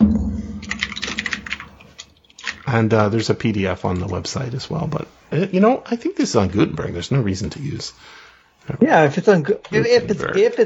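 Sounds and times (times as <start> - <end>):
typing on a computer keyboard: 0.6 - 2.7
speech: 2.7 - 10.6.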